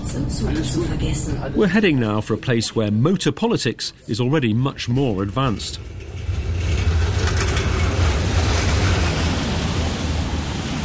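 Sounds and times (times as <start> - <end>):
brief metallic clanks of trams: 0.0 - 1.4, 4.9 - 10.3
continuous roar of city traffic with cars vans and tourist buses at a busy junction in Prague: 0.0 - 2.9, 4.7 - 10.8
speech: 0.2 - 6.0.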